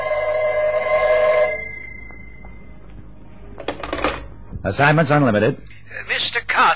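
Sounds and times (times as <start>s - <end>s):
telephone bell ringing: 0.0s - 4.5s
speech: 4.6s - 6.7s.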